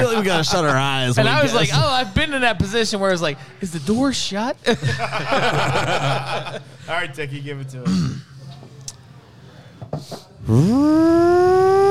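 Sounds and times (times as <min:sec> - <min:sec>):
laughter: 0:00.0 - 0:01.7, 0:04.7 - 0:06.9
speech: 0:00.0 - 0:08.3, 0:10.0 - 0:11.8
voice imitating a fire whistle: 0:10.4 - 0:11.8.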